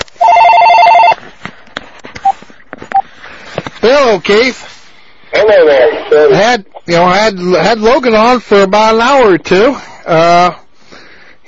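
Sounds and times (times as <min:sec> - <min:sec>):
electronic house telephone ringing with an incoming call: 0:00.2 - 0:01.2
short softer beeps: 0:02.2 - 0:03.0
speech: 0:03.9 - 0:04.8, 0:05.4 - 0:10.6.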